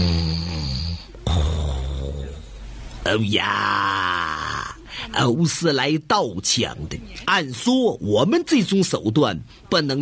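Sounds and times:
man's voice imitating heavy snoring of a sleeping man: 0.0s - 2.6s
speech: 3.1s - 4.1s, 5.1s - 10.0s.

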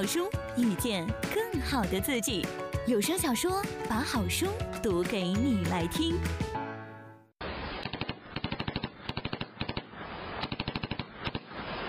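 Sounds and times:
speech: 0.0s - 6.5s
machine gun fire in rapid bursts: 7.7s - 11.8s.

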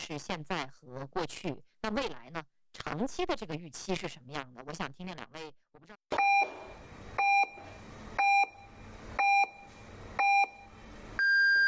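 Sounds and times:
speech: 0.1s - 6.7s
radio time signal pips marking the hour on an evening broadcast: 6.1s - 11.6s.

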